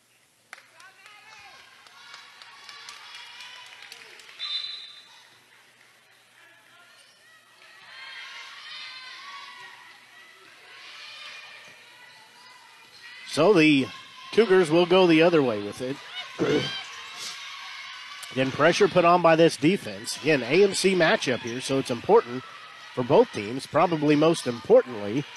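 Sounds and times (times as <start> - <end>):
indistinct voices: 11.7 - 25.3
speech: 13.3 - 16.8, 18.3 - 25.3
large crowd at a game groaning after a missed shot: 13.4 - 25.3.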